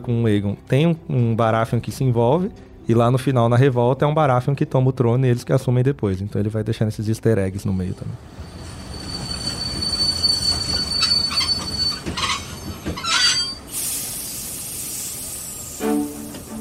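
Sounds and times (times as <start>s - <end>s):
speech: 0.0s - 8.6s
train braking at the central station with wheels squealing: 8.2s - 16.5s
train air hiss as it comes to a stop: 13.6s - 16.5s.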